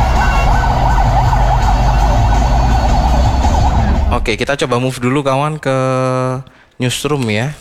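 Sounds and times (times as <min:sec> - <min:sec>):
fire truck siren wailing: 0:00.0 - 0:04.8
heavy low engine rumble: 0:00.0 - 0:06.5
traffic noise: 0:00.0 - 0:07.4
speech: 0:04.3 - 0:07.5.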